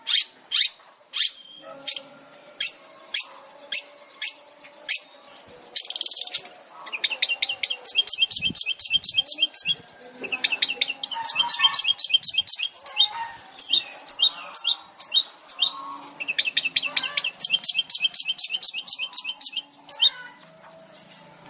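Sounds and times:
long-tailed shrike chirping and whistling song: 0.0s - 20.2s.

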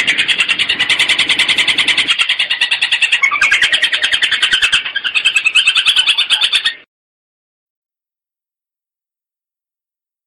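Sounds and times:
long-tailed shrike song: 0.0s - 6.9s.

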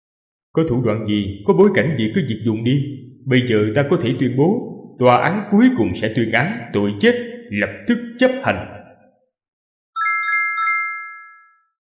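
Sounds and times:
speech: 0.5s - 8.8s
mobile phone ringtone with chiming notes and a long ringing tone: 10.0s - 11.8s.

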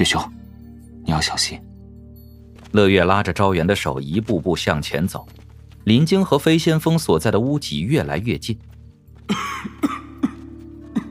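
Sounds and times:
speech: 0.0s - 0.4s, 1.0s - 1.7s, 2.7s - 8.7s, 9.3s - 10.0s
person coughing: 9.3s - 11.0s.

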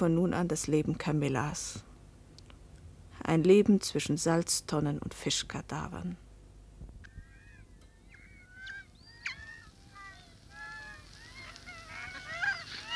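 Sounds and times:
speech: 0.0s - 1.9s, 3.2s - 6.2s
busy flock of seagulls mewing and squawking: 7.0s - 12.9s.

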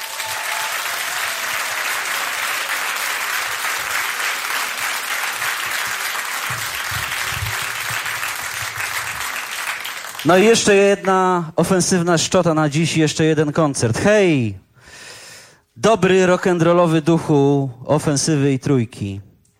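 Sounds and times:
concert audience applause: 0.0s - 10.6s
speech: 10.2s - 14.6s, 15.8s - 19.3s.

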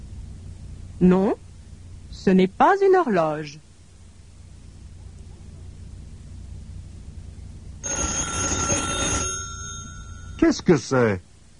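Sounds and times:
speech: 1.0s - 1.4s, 2.1s - 3.7s, 10.4s - 11.3s
telephone ringing: 7.8s - 10.7s.

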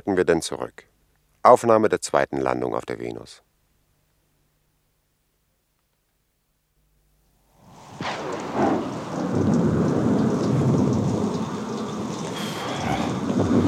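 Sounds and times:
speech: 0.0s - 3.5s
heavy rain hissing on the ground during a storm, falling on hot sand: 7.5s - 13.6s
low thunder rumble: 7.7s - 13.6s.

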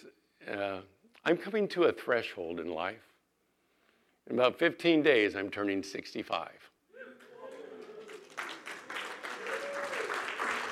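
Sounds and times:
speech: 0.5s - 3.1s, 4.3s - 6.7s
audience clapping: 7.1s - 10.7s.

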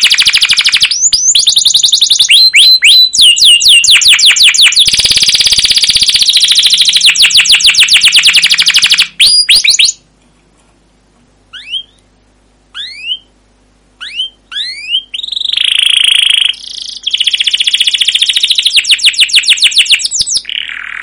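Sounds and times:
canary singing long rolling trills and upswept chirps: 0.0s - 10.0s, 11.5s - 12.1s, 12.7s - 21.0s.

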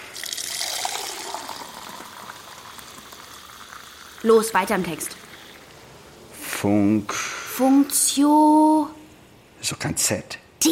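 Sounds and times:
water poured into a drinking glass: 0.0s - 6.2s
speech: 4.2s - 5.2s, 6.6s - 9.0s, 9.6s - 10.7s.

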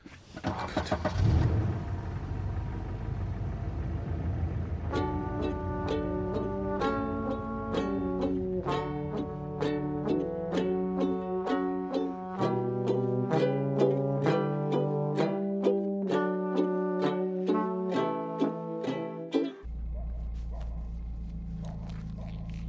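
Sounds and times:
car engine idling while warming up: 0.0s - 10.3s, 19.6s - 22.6s
plucked melodic tune: 4.9s - 19.7s.

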